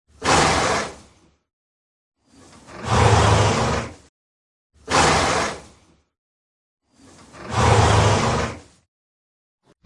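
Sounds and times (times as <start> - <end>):
horse snorting: 0.2 - 1.2, 2.6 - 4.0, 4.9 - 5.8, 7.4 - 8.7.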